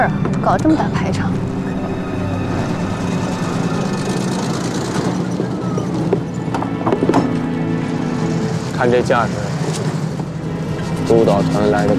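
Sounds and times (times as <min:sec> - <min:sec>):
speech: 0:00.0 - 0:01.4, 0:08.8 - 0:09.5, 0:11.1 - 0:11.9
military convoy of motorcycles and cars with engines droning and puttering: 0:00.0 - 0:11.9
rattling clatter of a convoy: 0:02.8 - 0:11.9.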